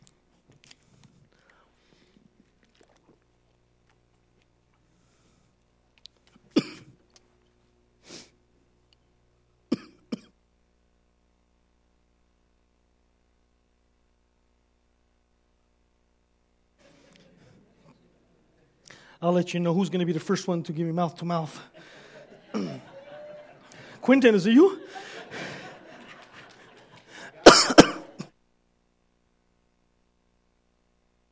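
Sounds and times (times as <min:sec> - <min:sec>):
faint breathy mouth sounds: 0:00.5 - 0:06.5
coughing from a tickle in the throat: 0:06.5 - 0:07.0, 0:09.7 - 0:10.4, 0:21.6 - 0:28.4
throat clearing from a tickle in the throat: 0:06.5 - 0:07.0, 0:22.5 - 0:22.9, 0:27.2 - 0:28.3
laughter: 0:16.8 - 0:18.8, 0:21.4 - 0:28.3
speech: 0:19.2 - 0:21.9, 0:22.6 - 0:22.8, 0:24.1 - 0:25.1.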